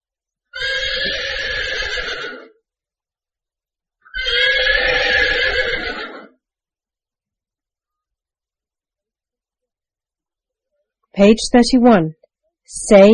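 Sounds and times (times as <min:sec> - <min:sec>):
horse neighing: 0:00.5 - 0:02.6, 0:04.0 - 0:06.4
speech: 0:11.2 - 0:13.1.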